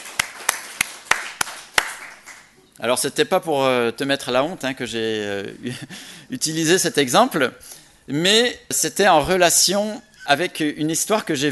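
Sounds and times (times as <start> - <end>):
scattered applause for someone passing an exam: 0.0 - 2.6
speech: 2.8 - 11.5.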